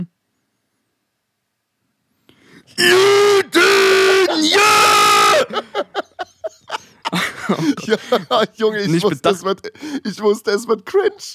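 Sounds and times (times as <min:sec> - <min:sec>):
speech: 0:02.7 - 0:06.0, 0:07.5 - 0:11.3
person yelling a loud exuberant celebratory shout: 0:02.8 - 0:05.6
laughter: 0:02.9 - 0:09.2.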